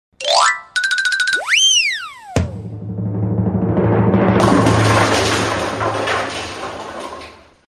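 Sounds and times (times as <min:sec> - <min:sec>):
piano effects: 0:00.2 - 0:06.0.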